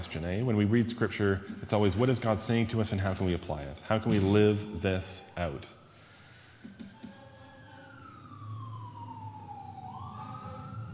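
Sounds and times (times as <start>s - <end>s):
speech: 0.0s - 5.8s
fire truck siren passing outside: 5.8s - 10.9s.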